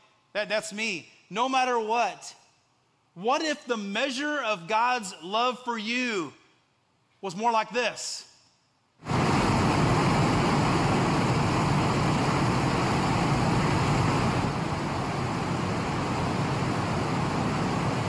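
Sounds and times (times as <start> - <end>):
speech: 0.4 - 2.4, 3.2 - 6.4, 7.2 - 8.3
roaring waterfall at Niagara Falls: 9.0 - 18.0.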